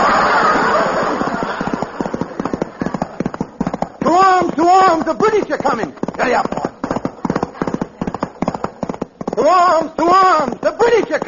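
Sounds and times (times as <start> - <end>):
laughter: 0.0 - 8.1
horse hooves galloping through the countryside: 0.0 - 11.2
speech: 5.4 - 6.5.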